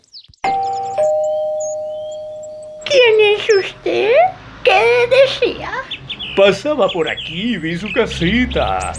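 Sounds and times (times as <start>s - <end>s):
doorbell chiming a two-note ding-dong: 0.5s - 3.5s
speech: 3.0s - 4.4s, 5.2s - 8.9s.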